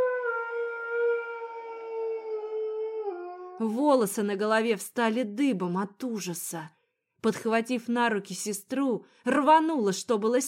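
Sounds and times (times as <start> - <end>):
long drawn-out howl in an underground corridor: 0.0 - 3.6
speech: 3.6 - 10.4.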